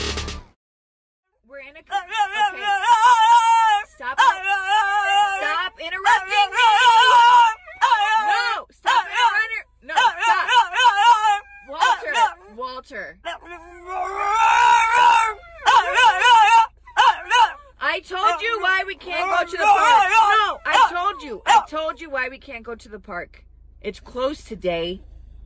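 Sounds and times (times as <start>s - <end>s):
dog whining and howling: 1.9s - 12.5s, 13.3s - 21.7s
speech: 22.5s - 25.1s.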